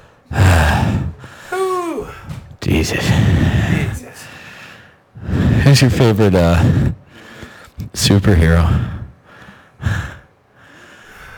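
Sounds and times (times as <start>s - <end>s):
heavy breathing into the microphone: 0.0s - 11.3s
speech: 2.8s - 4.3s, 5.6s - 7.0s, 7.8s - 9.0s.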